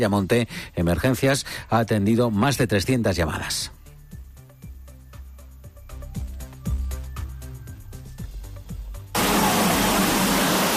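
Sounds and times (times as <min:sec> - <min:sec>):
speech: 0:00.0 - 0:03.8
musical passage with deep thumping beats: 0:03.9 - 0:09.2
torrential rain pouring down: 0:09.2 - 0:10.7.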